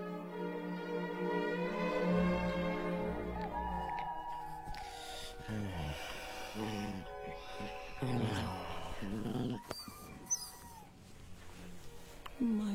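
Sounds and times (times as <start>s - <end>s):
faint sound: 0.1s - 12.7s
dog growling: 5.4s - 10.9s.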